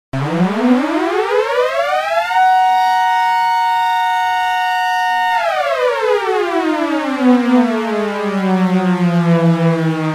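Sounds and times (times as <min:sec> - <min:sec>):
outer space alarm: 0:00.2 - 0:10.1.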